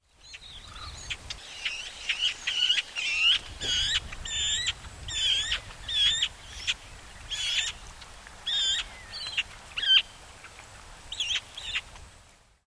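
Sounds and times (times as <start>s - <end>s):
magpie calling: 0.6s - 7.8s, 8.5s - 10.1s.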